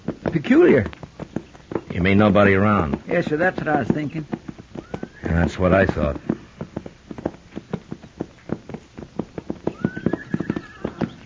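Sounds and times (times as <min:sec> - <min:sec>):
horses walking with hooves clip-clopping: 0:00.0 - 0:11.2
speech: 0:00.3 - 0:01.0, 0:02.0 - 0:04.4, 0:05.3 - 0:06.3
horse whinny: 0:04.7 - 0:06.6, 0:09.5 - 0:11.2.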